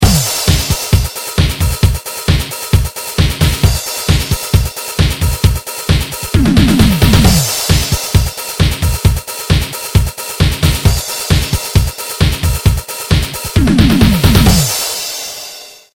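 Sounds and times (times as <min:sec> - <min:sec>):
trance beat: 0:00.0 - 0:15.4.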